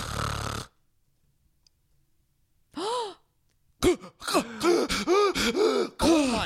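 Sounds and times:
person imitating loud snoring of someone with sleep apnea: 0:00.0 - 0:00.8
person gasping: 0:02.7 - 0:06.4.

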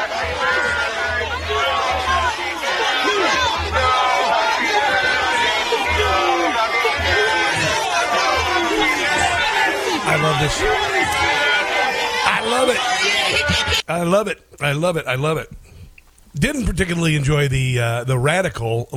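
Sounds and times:
large outdoor protest crowd shouting and chanting: 0:00.0 - 0:13.9
speech: 0:10.2 - 0:11.2, 0:12.5 - 0:15.6, 0:16.3 - 0:18.9.

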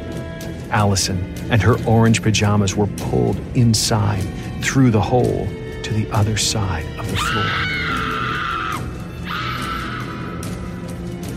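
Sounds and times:
speech: 0:00.7 - 0:07.8
girl shrieking in terror: 0:07.2 - 0:10.5.

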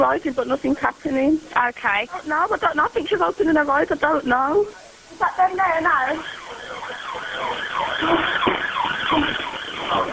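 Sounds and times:
speech: 0:00.0 - 0:08.5
ambulance siren yelping: 0:05.7 - 0:10.1.

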